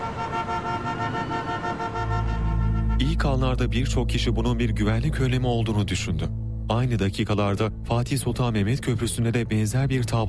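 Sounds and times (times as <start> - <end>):
car horns honking in a traffic jam on a bridge: 0.0 - 3.3
continuous vehicle rumble: 0.0 - 4.7
speech: 3.0 - 10.2.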